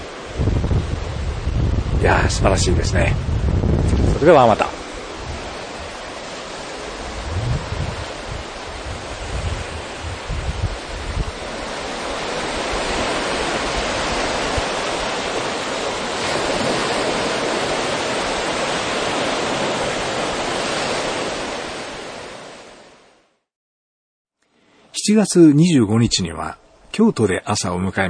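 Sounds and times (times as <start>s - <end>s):
low rumbling bursts: 0.0s - 11.3s
ocean waves breaking on beach: 0.0s - 23.3s
speech: 2.0s - 4.8s, 25.1s - 28.0s.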